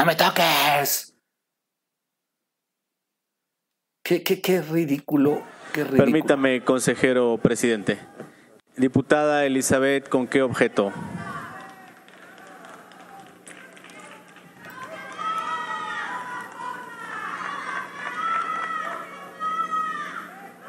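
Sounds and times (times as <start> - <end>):
speech: 0.0 - 1.1, 4.1 - 8.2, 8.8 - 11.3
legislators shouting over one another in a chamber session: 10.8 - 13.4, 14.0 - 20.6.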